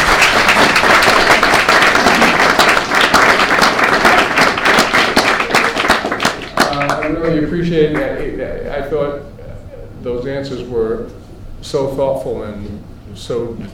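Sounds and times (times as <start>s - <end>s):
audience applause at a live talk: 0.0s - 8.1s
speech: 7.3s - 9.3s, 10.0s - 13.7s.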